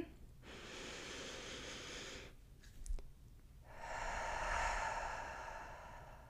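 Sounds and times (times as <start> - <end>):
person taking a deep mindful breath: 0.4 - 2.4, 3.6 - 6.2.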